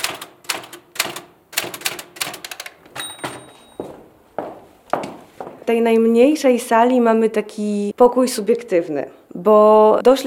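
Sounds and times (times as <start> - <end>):
typewriter keys clacking: 0.0 - 3.8
typewriter bell-like ding: 2.2 - 3.9
speech: 5.7 - 10.2.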